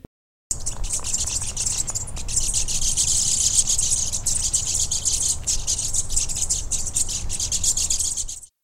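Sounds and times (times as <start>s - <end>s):
flock of birds chirping and calling reacting to a predator: 0.5s - 8.5s.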